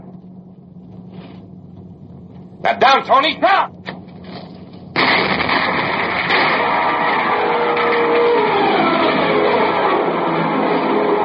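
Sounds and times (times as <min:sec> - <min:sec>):
truck engine rumbling as it rolls past: 0:00.0 - 0:11.2
speech: 0:02.6 - 0:03.8.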